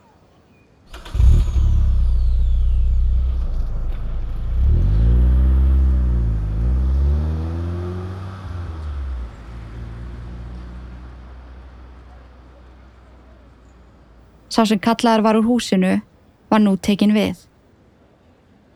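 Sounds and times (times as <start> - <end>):
car engine starting and revving as it accelerates away: 0.9 - 12.0
speech: 14.6 - 17.5.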